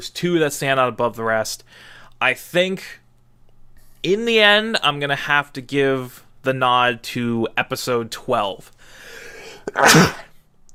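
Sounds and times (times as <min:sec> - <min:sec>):
speech: 0:00.0 - 0:03.0, 0:04.0 - 0:10.2
loud sneeze: 0:09.6 - 0:10.3.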